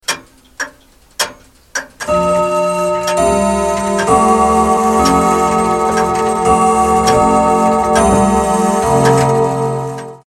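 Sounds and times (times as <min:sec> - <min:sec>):
big clock alarm ringtone: 0:02.0 - 0:10.2.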